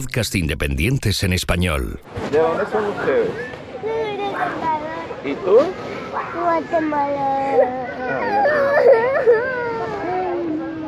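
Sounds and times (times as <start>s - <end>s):
speech: 0.0s - 9.5s
child crying in wavering whimpering sobs: 7.2s - 10.8s.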